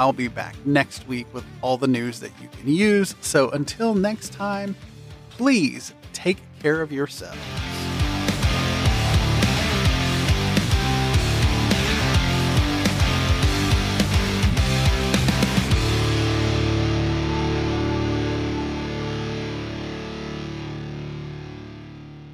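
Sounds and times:
speech: 0:00.0 - 0:07.7
distorted rock instrumental podcast soundtrack music: 0:07.3 - 0:22.3.

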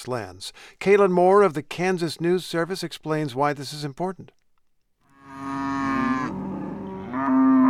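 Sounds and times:
speech: 0:00.0 - 0:04.4
cow mooing in a herd on a cattle ranch pasture: 0:05.1 - 0:07.6.

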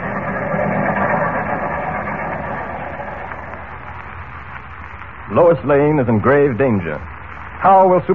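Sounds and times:
train rumbling into a station: 0:00.0 - 0:05.0
speech: 0:05.3 - 0:08.1.

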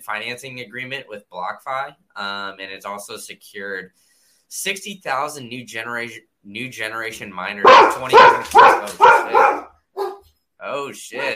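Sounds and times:
speech: 0:00.0 - 0:09.6, 0:10.6 - 0:11.3
dog barking: 0:07.6 - 0:10.3.

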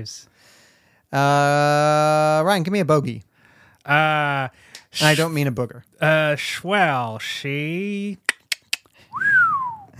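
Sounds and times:
speech: 0:00.0 - 0:08.3, 0:09.2 - 0:09.4
finger snaps: 0:08.3 - 0:08.9
person whistling one clear swooping note: 0:09.1 - 0:09.9.

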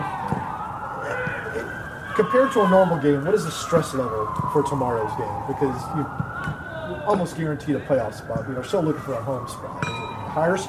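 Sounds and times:
ambulance siren wailing: 0:00.0 - 0:10.6
speech: 0:02.2 - 0:10.6.

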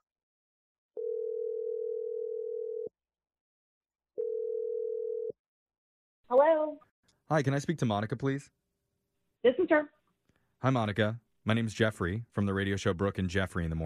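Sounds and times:
telephone dial tone: 0:01.0 - 0:02.9, 0:04.2 - 0:05.3
speech: 0:06.3 - 0:08.6, 0:09.4 - 0:10.0, 0:10.6 - 0:13.8.

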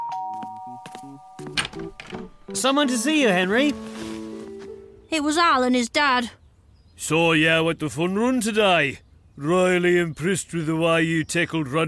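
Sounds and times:
doorbell ding-dong: 0:00.0 - 0:01.6
speech: 0:02.5 - 0:03.9, 0:05.1 - 0:06.4, 0:07.0 - 0:11.8.

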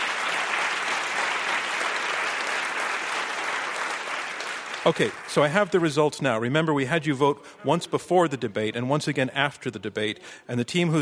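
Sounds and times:
sustained applause from a sizable audience: 0:00.0 - 0:05.8
speech: 0:04.8 - 0:10.9.

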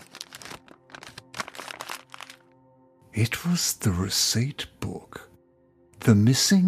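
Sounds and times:
brown paper bag being crumpled open: 0:00.0 - 0:02.6
speech: 0:03.2 - 0:05.3, 0:06.0 - 0:06.6.

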